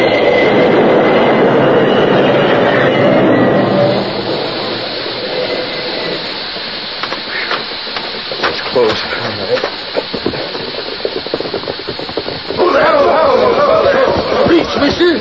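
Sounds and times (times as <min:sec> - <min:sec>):
train braking to a stop: 0:00.0 - 0:15.1
steady hiss: 0:03.6 - 0:15.1.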